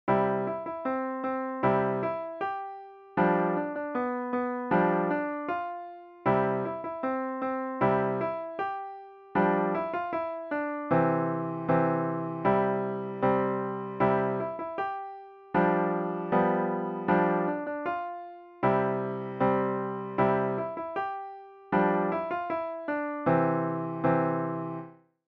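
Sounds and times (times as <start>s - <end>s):
piano solo: 0.1s - 25.0s.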